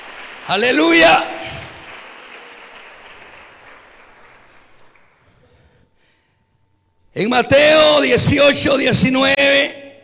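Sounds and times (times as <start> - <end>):
audience applauding: 0.0 - 5.7
speech: 0.5 - 1.6, 7.2 - 9.8.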